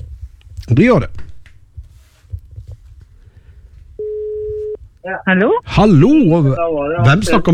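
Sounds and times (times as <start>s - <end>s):
speech: 0.7s - 1.2s, 5.0s - 7.5s
telephone ringing tone on an outgoing call: 4.0s - 4.8s.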